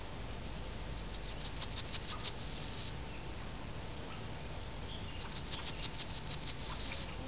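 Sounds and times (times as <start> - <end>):
Emberiza citrinella singing: 0.7 - 7.2.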